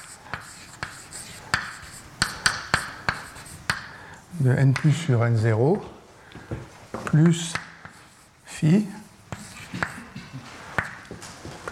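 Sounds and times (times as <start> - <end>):
writing an equation on a board: 0.0 - 3.9, 7.1 - 11.7
speech: 4.4 - 7.6, 8.6 - 9.0.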